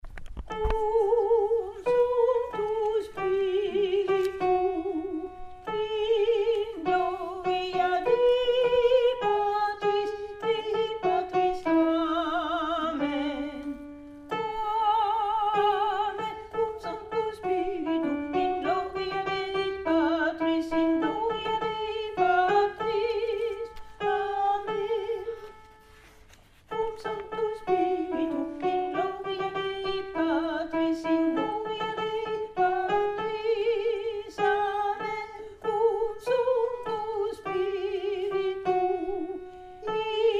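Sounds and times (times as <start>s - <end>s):
alto singing: 0.5s - 25.6s, 26.7s - 40.3s.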